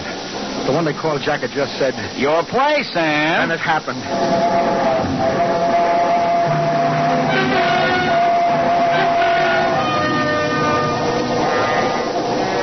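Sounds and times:
speech: 0.7 - 5.5
train roaring through a tunnel: 3.5 - 12.6
shrill sustained tones: 4.0 - 12.6.

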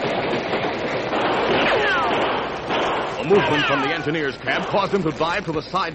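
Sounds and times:
train speeding up a grade along the rails: 0.0 - 2.7
speech: 3.3 - 5.9.

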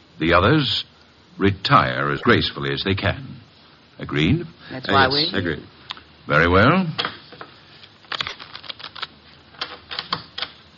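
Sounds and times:
speech: 0.2 - 3.4, 4.0 - 7.1
playing cards being shuffled: 8.1 - 10.5.

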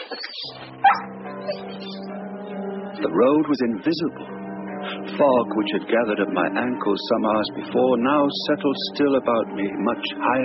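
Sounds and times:
speech: 0.1 - 1.9, 3.0 - 10.4
dog whimpering and whining: 0.8 - 1.9.

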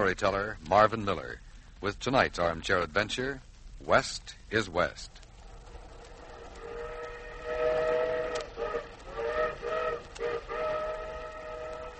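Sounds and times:
speech: 0.0 - 5.2
train whistle blowing: 6.3 - 11.9.

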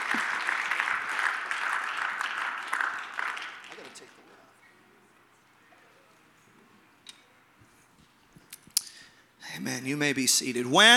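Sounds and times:
audience clapping: 0.0 - 4.4
speech: 9.6 - 10.9.

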